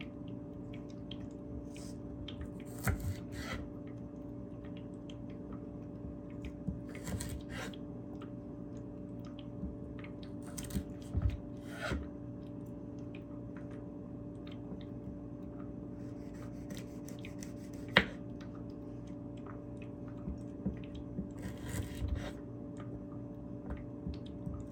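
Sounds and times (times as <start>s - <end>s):
steady low electrical hum: 0.0s - 24.6s
knife chopping carrots on a board: 2.6s - 3.7s, 6.8s - 7.7s, 10.4s - 12.0s, 16.2s - 18.2s, 21.4s - 22.4s.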